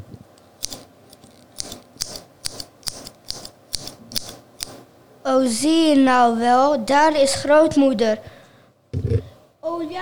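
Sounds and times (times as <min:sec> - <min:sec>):
scissors snipping: 0:00.6 - 0:04.8
speech: 0:05.3 - 0:08.3.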